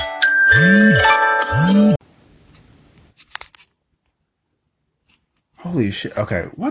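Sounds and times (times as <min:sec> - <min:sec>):
mobile phone ringtone with bright electronic melody: 0:00.2 - 0:02.0
speech: 0:00.6 - 0:00.8, 0:01.6 - 0:02.0, 0:05.8 - 0:06.6.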